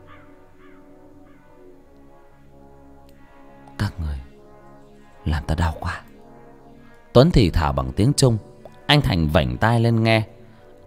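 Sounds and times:
black crow cawing: 0.0s - 2.1s
steady droning background: 0.0s - 10.8s
speech: 5.2s - 6.1s, 7.2s - 10.3s.

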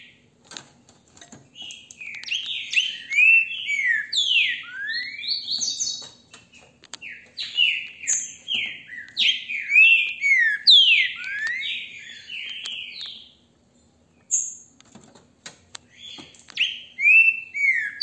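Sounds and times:
green-winged saltator song: 1.6s - 13.4s, 15.9s - 18.0s.

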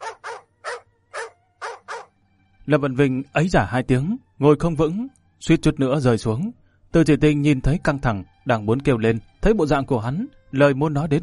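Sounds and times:
guard dogs barking furiously: 0.0s - 2.1s
speech: 2.7s - 11.2s.

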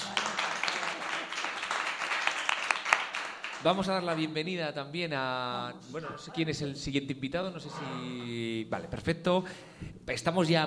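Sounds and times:
audience applause at a community centre event: 0.0s - 4.2s
sharp individual claps: 0.0s - 4.3s
speech: 3.6s - 10.6s.

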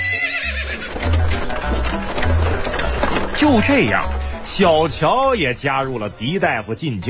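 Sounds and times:
horse whinnying while pulling a carriage: 0.0s - 4.0s
dull clopping of horse hooves: 0.0s - 6.8s
speech: 3.4s - 7.0s.

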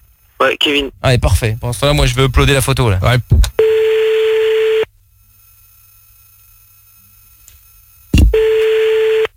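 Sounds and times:
speech: 0.4s - 3.5s
ringback tone of an outgoing telephone call: 3.6s - 4.9s, 8.2s - 9.3s.

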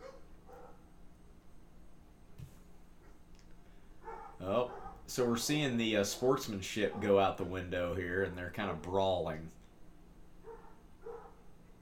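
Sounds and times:
dogs barking in the neighborhood: 0.0s - 0.9s, 3.9s - 5.2s, 6.7s - 7.5s, 10.4s - 11.5s
steady low hum: 0.0s - 11.8s
speech: 4.5s - 9.6s.

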